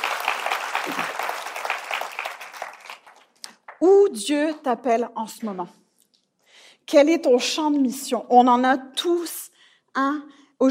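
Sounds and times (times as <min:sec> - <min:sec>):
audience applause: 0:00.0 - 0:03.8
speech: 0:00.9 - 0:01.1, 0:03.8 - 0:05.8, 0:06.9 - 0:09.4, 0:10.0 - 0:10.6.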